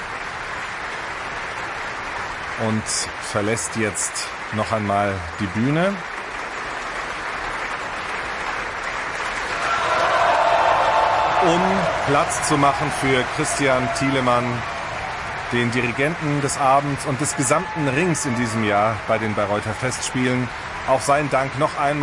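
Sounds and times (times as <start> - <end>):
large concert-hall opera audience applauding after performance: 0.0 - 22.0
speech: 2.6 - 6.1, 11.4 - 14.8, 15.5 - 22.0.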